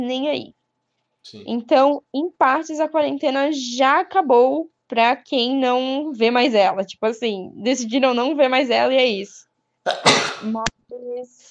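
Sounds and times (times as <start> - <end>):
speech: 0.0 - 0.6, 1.2 - 11.5
person sneezing: 9.9 - 10.5.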